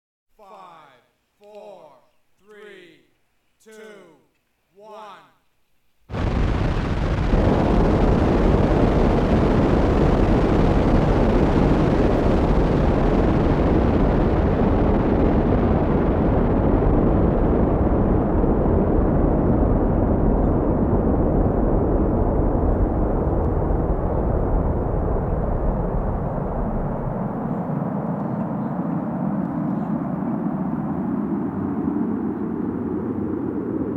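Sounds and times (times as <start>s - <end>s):
countdown voice: 0.4s - 4.2s, 4.8s - 5.4s
science fiction UFO rocket launch: 6.1s - 33.9s.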